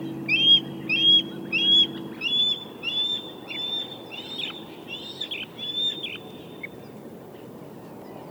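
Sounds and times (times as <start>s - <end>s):
low steady hum: 0.0s - 8.3s
red-tailed hawk Buteo jamaicensis calls: 0.3s - 6.9s.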